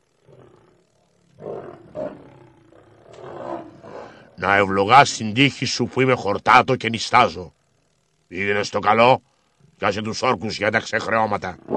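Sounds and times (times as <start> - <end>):
lion roaring: 0.2 - 4.4, 11.4 - 11.7
speech: 4.4 - 7.6, 8.3 - 11.7.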